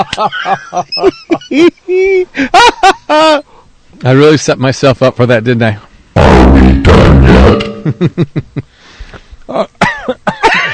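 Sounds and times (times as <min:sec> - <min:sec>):
laughter: 0:00.0 - 0:03.4, 0:07.8 - 0:08.6
speech: 0:00.0 - 0:03.4, 0:04.0 - 0:08.7, 0:09.5 - 0:10.3
harsh coughs: 0:09.8 - 0:10.5.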